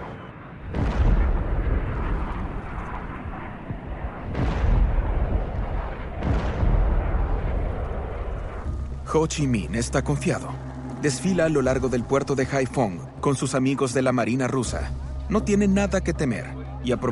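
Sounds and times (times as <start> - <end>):
bombs exploding during wartime air raids: 0.7 - 3.3, 4.2 - 9.0
speech: 9.1 - 17.1.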